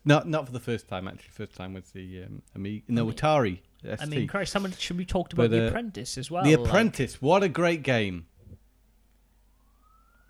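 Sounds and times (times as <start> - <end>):
speech: 0.0 - 8.3
constant hum: 0.0 - 10.2
faint police siren sounding outside: 9.2 - 10.2.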